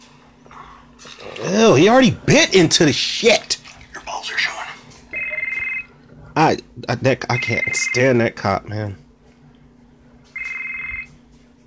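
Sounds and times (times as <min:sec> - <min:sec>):
low hum: 0:00.0 - 0:11.6
speech: 0:01.4 - 0:03.6, 0:06.4 - 0:09.0
phone ringtone: 0:05.1 - 0:05.9, 0:07.3 - 0:08.1, 0:10.4 - 0:11.1.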